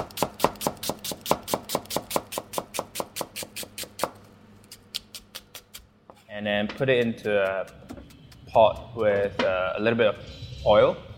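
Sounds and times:
knife roughly slicing an onion on a board: 0.0s - 5.8s, 6.8s - 9.2s
speech: 6.4s - 7.8s, 8.5s - 11.0s.

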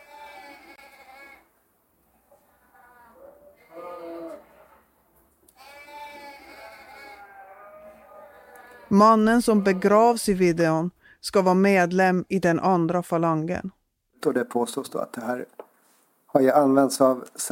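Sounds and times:
sheep bleating: 0.0s - 1.5s, 2.6s - 10.3s
speech: 8.9s - 15.6s, 16.3s - 17.5s.

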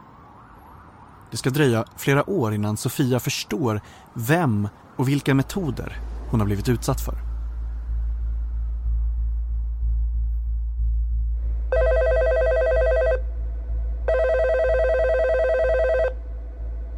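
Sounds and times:
speech: 1.3s - 7.3s
steady low rumble: 5.4s - 16.9s
telephone ringing: 11.8s - 13.2s, 14.1s - 16.2s.

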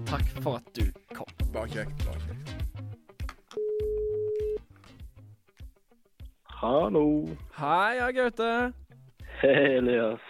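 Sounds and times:
speech: 0.1s - 2.8s, 6.6s - 8.8s, 9.4s - 10.2s
telephone ringback tone: 3.6s - 4.6s.

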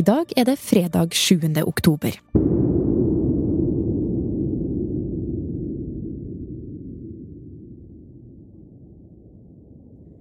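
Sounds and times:
speech: 0.0s - 2.4s
deep underwater dynamite blast on the Norwegian seabed: 2.4s - 10.1s.

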